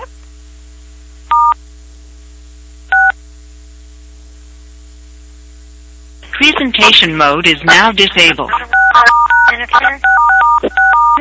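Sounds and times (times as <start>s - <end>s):
steady low hum: 0.0s - 11.2s
speech: 6.4s - 10.9s
telephone keypad tones during a phone call: 8.7s - 11.2s.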